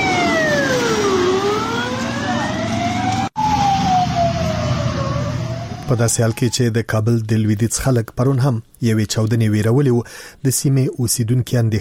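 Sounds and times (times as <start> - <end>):
ambulance sirens speeding past near a bus stop: 0.0 - 6.8
low traffic rumble: 0.0 - 7.4
speech: 5.9 - 11.8.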